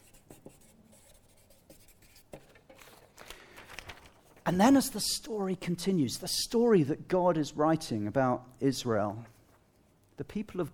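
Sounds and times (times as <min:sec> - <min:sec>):
pen scratching across paper in short strokes: 0:00.0 - 0:02.3
speech: 0:04.5 - 0:09.3, 0:10.2 - 0:10.7.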